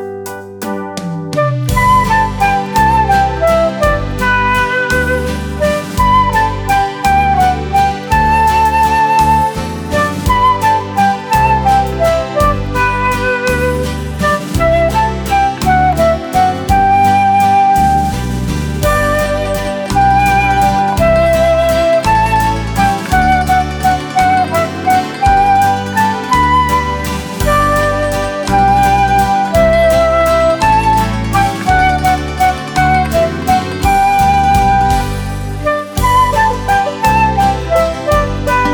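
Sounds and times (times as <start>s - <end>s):
flute: 0.7s - 38.7s.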